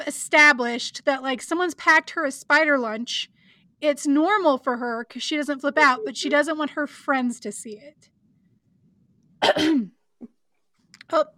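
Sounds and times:
speech: 0.1s - 8.1s, 9.4s - 10.0s, 11.1s - 11.3s
cough: 9.4s - 10.4s.

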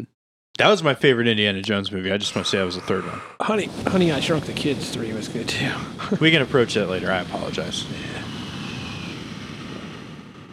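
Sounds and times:
speech: 0.0s - 8.3s
faint high whine: 1.8s - 10.5s
airplane engine roar during takeoff: 2.2s - 10.5s.

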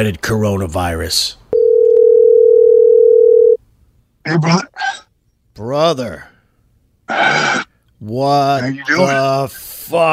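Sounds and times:
speech: 0.0s - 1.4s, 4.2s - 5.0s, 5.6s - 6.3s, 7.1s - 10.1s
telephone dial tone while calling: 1.6s - 3.6s.

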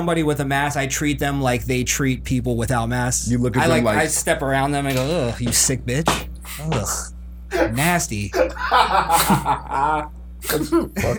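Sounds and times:
speech: 0.0s - 11.1s
breathy burst: 6.4s - 7.8s
person sneezing: 6.4s - 9.5s, 10.4s - 10.7s
chuckling: 6.5s - 11.1s.

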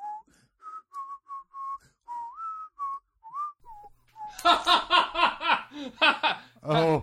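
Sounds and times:
person whistling a bouncy melody using inward whistling: 0.0s - 4.6s
loud rhythmic bursts of laughter: 4.3s - 7.0s.

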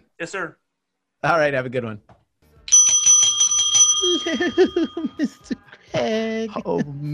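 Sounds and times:
speech: 0.2s - 0.6s, 1.2s - 2.2s, 4.0s - 7.1s
bell ringing: 2.7s - 5.4s
laughter: 4.0s - 7.1s.

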